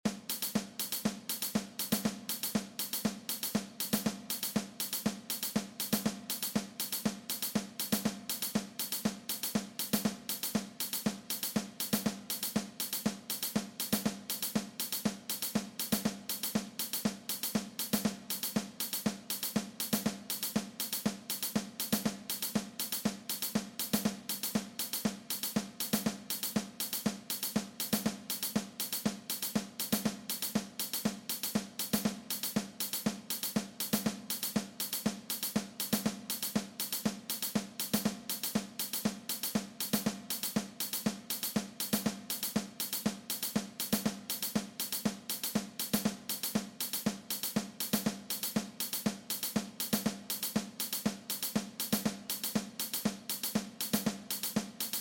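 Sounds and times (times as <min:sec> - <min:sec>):
drum kit percussion: 0:00.0 - 0:54.9.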